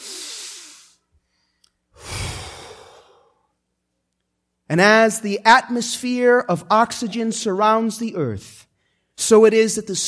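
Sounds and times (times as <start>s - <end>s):
congregation exhaling heavily: 0.0s - 1.0s, 2.0s - 3.3s
congregation taking a deep breath together: 0.0s - 3.4s
speech: 4.7s - 10.0s.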